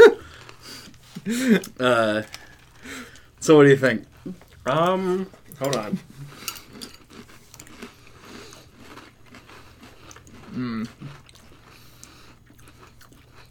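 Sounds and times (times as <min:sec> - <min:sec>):
person chewing dry breakfast cereal: 0:00.2 - 0:13.5
speech: 0:01.2 - 0:06.4, 0:10.6 - 0:11.2
murmured vocal sound: 0:10.5 - 0:11.2.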